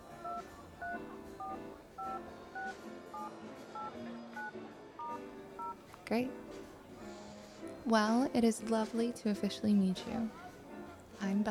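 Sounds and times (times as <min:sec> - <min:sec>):
soft murmur: 0:00.0 - 0:11.4
two-tone phone keypad beeps as a number is typed: 0:00.2 - 0:05.8
speech: 0:06.1 - 0:06.5, 0:07.9 - 0:10.4, 0:11.2 - 0:11.4.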